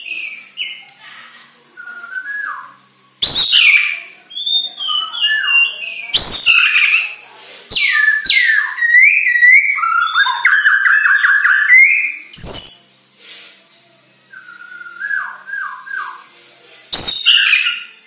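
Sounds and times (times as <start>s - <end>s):
White-rumped shama song: 1.8s - 13.0s, 14.3s - 16.2s, 16.9s - 18.0s.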